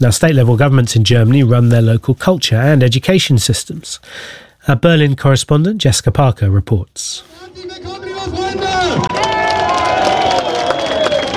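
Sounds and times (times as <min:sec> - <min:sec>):
speech: 0:00.0 - 0:09.2
large crowd cheering and whooping at political rally: 0:07.8 - 0:11.3
people clapping: 0:07.8 - 0:11.3.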